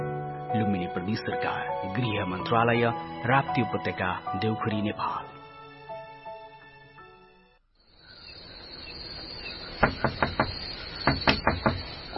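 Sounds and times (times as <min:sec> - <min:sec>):
speech: 0:00.6 - 0:05.3
knocking on a door late at night: 0:09.8 - 0:11.9.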